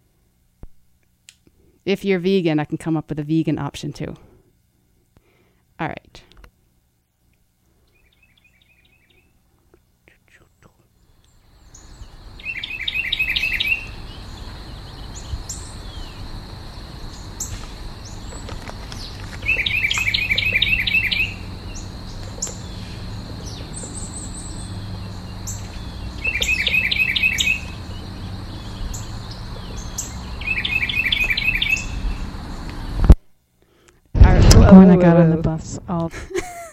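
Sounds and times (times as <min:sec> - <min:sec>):
steady hum: 0:00.0 - 0:36.7
speech: 0:01.8 - 0:04.3, 0:05.8 - 0:06.3
bird singing in a backyard in the morning: 0:11.0 - 0:33.0.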